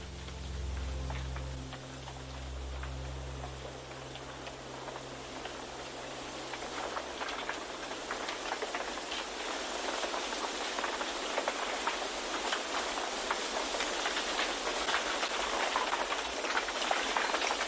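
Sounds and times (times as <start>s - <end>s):
low rumble: 0.0s - 8.6s
bamboo leaves rustling in the wind: 0.0s - 17.6s.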